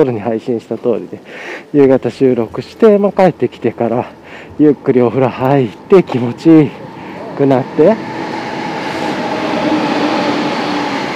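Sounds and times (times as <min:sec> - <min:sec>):
speech: 0:00.0 - 0:06.8, 0:07.4 - 0:08.2
train wheels on rails rumbling past: 0:03.5 - 0:11.1.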